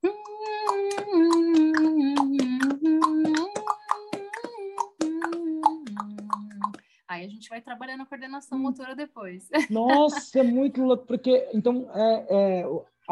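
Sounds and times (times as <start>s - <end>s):
person humming a steady note: 0.0s - 6.8s, 9.7s - 12.8s
tongue clicks: 0.1s - 6.8s
speech: 7.3s - 13.1s
laughter: 9.6s - 12.8s.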